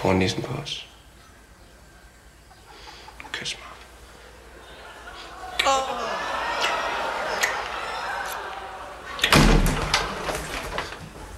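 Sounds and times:
speech: 0.0 - 0.9, 3.4 - 3.7
laughter: 4.0 - 11.0
door bursting open with a loud clatter: 9.1 - 11.2.

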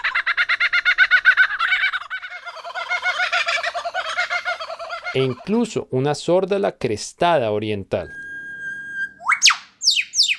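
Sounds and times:
common kookaburra laughing call: 0.0 - 5.6
speech: 5.2 - 8.2.

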